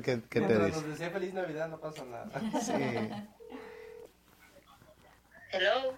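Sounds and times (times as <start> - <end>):
speech: 0.0 - 3.4, 5.5 - 5.9
laughter: 2.3 - 3.4
steady electronic telephone tone of phone call being placed: 3.4 - 4.1.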